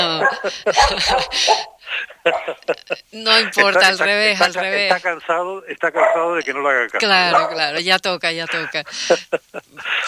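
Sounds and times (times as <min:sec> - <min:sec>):
laughter: 0:00.0 - 0:05.1, 0:08.4 - 0:10.0
speech: 0:00.0 - 0:10.0
dog barking: 0:00.1 - 0:02.6, 0:06.0 - 0:06.4, 0:07.3 - 0:07.6.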